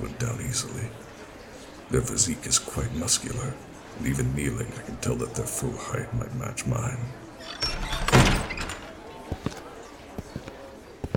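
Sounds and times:
speech: 0:00.2 - 0:01.1, 0:01.9 - 0:07.8
heavy wooden castle door booming open: 0:07.5 - 0:09.0.

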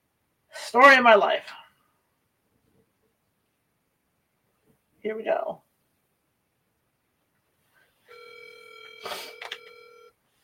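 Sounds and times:
speech: 0:00.7 - 0:01.6, 0:05.0 - 0:05.6
electronic telephone ringing tone on a call: 0:08.1 - 0:10.2.

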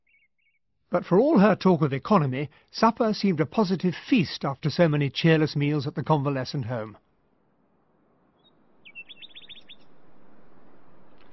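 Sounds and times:
nightingale singing at night: 0:00.0 - 0:00.6, 0:08.4 - 0:10.0
speech: 0:00.9 - 0:07.0.

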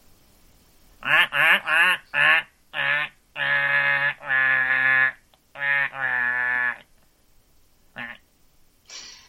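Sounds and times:
duck quacking: 0:01.0 - 0:06.9, 0:08.0 - 0:08.2.

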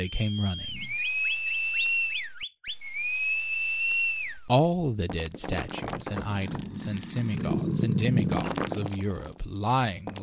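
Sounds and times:
speech: 0:00.0 - 0:00.7, 0:04.5 - 0:10.2
shrill whistle: 0:00.0 - 0:04.5.

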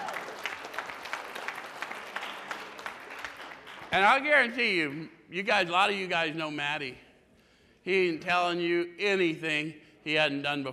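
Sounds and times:
audience applause: 0:00.0 - 0:04.0
speech: 0:03.9 - 0:07.0, 0:07.8 - 0:10.7.

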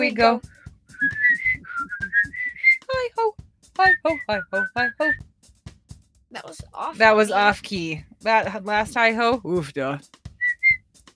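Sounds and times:
speech: 0:00.0 - 0:01.2, 0:03.8 - 0:05.2, 0:06.4 - 0:10.2
person whistling a short bouncy tune: 0:00.9 - 0:02.9, 0:03.8 - 0:05.2, 0:10.4 - 0:10.8.

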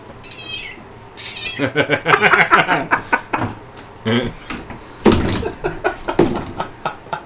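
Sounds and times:
cat meowing: 0:00.2 - 0:01.8
laughter: 0:01.5 - 0:04.5, 0:05.4 - 0:07.2.

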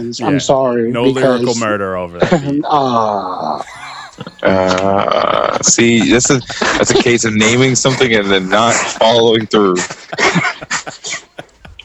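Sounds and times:
speech: 0:00.0 - 0:11.3
laughter: 0:00.0 - 0:11.8
harsh breathy coughs: 0:03.4 - 0:06.8, 0:09.8 - 0:11.8.

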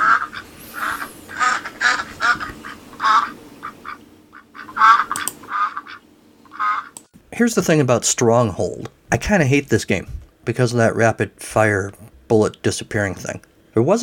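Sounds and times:
duck quacking: 0:00.0 - 0:07.0
speech: 0:07.4 - 0:14.0.

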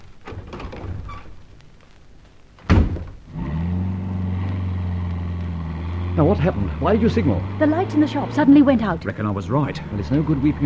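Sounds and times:
car door slamming shut: 0:02.6 - 0:03.2
car engine turning over and idling: 0:02.9 - 0:10.6
speech: 0:06.2 - 0:10.6.

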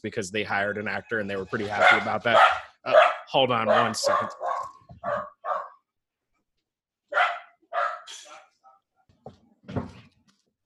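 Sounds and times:
speech: 0:00.0 - 0:05.3
dogs barking: 0:01.6 - 0:05.9, 0:07.1 - 0:08.9.

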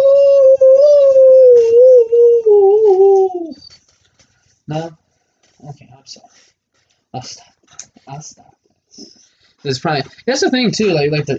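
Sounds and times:
person imitating a dog howling: 0:00.0 - 0:03.6
speech: 0:04.7 - 0:05.0, 0:07.2 - 0:07.4, 0:09.6 - 0:11.3.

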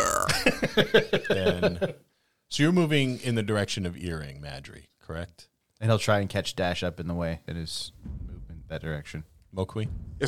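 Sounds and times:
short throaty belch-like croaks: 0:00.0 - 0:00.6
speech: 0:00.8 - 0:10.2.

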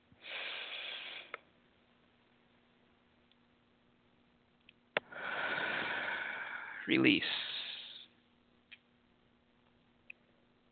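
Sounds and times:
person taking a deep breath during a chakra-balancing exercise: 0:00.2 - 0:01.4, 0:05.0 - 0:08.1
speech: 0:06.9 - 0:07.5.

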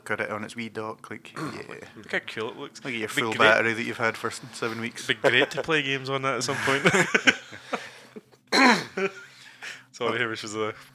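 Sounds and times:
speech: 0:00.1 - 0:07.8, 0:10.0 - 0:10.9
faint breathy throat sounds: 0:01.4 - 0:01.9
laughter: 0:04.7 - 0:08.2, 0:09.0 - 0:09.8
cough held back in the throat: 0:08.5 - 0:09.2.

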